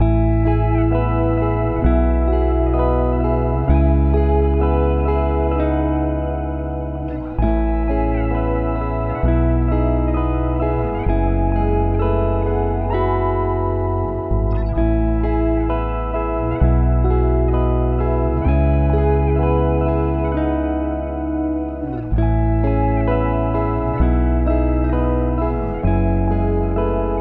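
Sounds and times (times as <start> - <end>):
guitar loop at 130 BPM in E major: 0.0 - 27.1.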